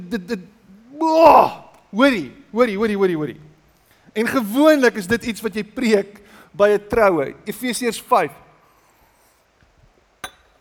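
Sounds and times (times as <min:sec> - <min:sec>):
person reading a sermon: 0:00.0 - 0:08.6
speech: 0:00.1 - 0:03.5, 0:04.2 - 0:08.4
glass being set down on a hard surface: 0:10.2 - 0:10.5.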